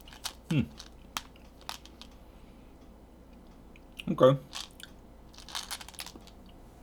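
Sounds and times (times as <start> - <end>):
crunching and chewing of small milk chocolate cylinders with a shellac coating: 0.0 - 2.2, 3.8 - 6.6
speech: 0.5 - 0.8, 4.1 - 4.6.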